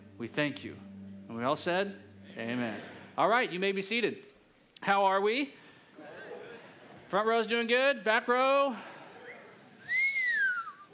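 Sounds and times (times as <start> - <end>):
speech: 0.2 - 5.6, 7.1 - 8.9
person whistling through teeth: 9.9 - 10.9.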